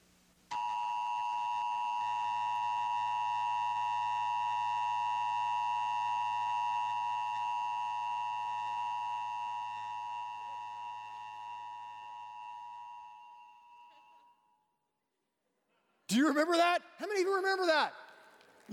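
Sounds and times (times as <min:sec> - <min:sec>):
emergency broadcast system test tone played on a TV: 0:00.5 - 0:14.2
speech: 0:16.1 - 0:18.0.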